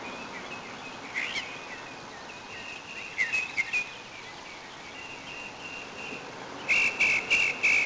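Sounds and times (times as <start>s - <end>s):
constant rushing background noise: 0.0s - 7.8s
mockingbird thin whistle: 2.6s - 3.9s, 5.0s - 7.8s.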